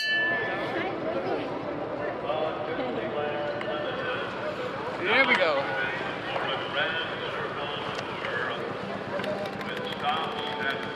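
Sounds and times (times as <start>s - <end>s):
metal bell clanging: 0.0s - 0.6s
murmuring voices: 0.0s - 10.9s.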